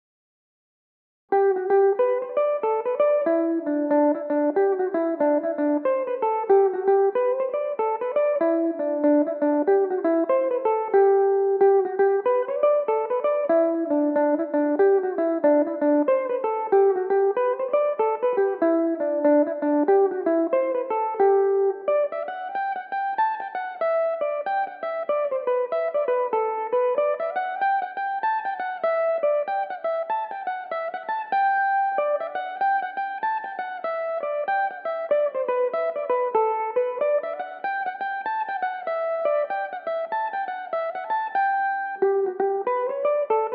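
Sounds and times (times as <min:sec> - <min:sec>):
electric mandolin in G major: 0:01.3 - 0:43.5.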